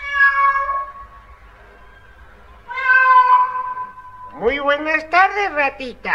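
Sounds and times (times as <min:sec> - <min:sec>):
cat meowing: 0:00.0 - 0:01.1, 0:02.6 - 0:04.3
speech: 0:04.6 - 0:06.1.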